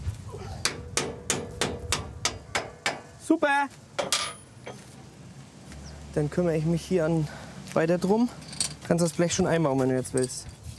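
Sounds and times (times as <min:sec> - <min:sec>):
hammer knocking a bolt back into place on a harvester: 0:00.6 - 0:03.1, 0:04.0 - 0:04.8
speech: 0:03.3 - 0:03.9, 0:06.2 - 0:10.5.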